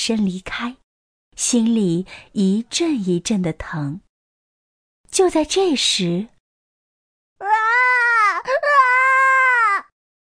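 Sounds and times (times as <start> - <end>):
speech: 0.0 - 0.8, 1.4 - 4.0, 5.1 - 6.4
baby maiasaura crying: 7.4 - 9.9.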